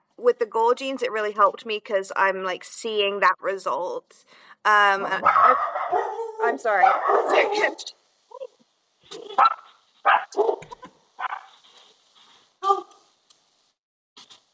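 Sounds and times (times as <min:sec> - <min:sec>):
speech: 0:00.2 - 0:08.0, 0:09.1 - 0:10.6
dogs yipping and whimpering: 0:05.2 - 0:07.7
dogs barking: 0:05.2 - 0:07.8, 0:09.4 - 0:11.6
human voice sounds: 0:09.1 - 0:09.4, 0:12.6 - 0:13.0.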